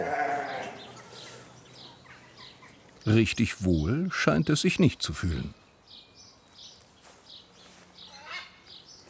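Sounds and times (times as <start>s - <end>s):
sheep bleating while being restrained: 0.0s - 0.8s
faint noisy outdoor background: 0.0s - 9.0s
speech: 3.0s - 5.6s.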